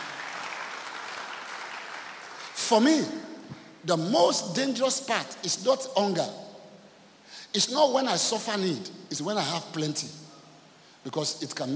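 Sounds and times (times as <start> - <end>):
congregation clapping hands during a church worship service: 0.0 - 3.0
speech: 2.7 - 6.4, 7.5 - 10.2, 11.0 - 11.7.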